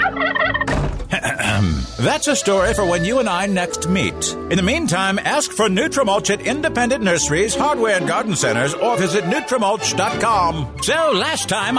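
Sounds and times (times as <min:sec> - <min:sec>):
turkey gobbling: 0:00.0 - 0:00.7
speech: 0:01.6 - 0:11.7.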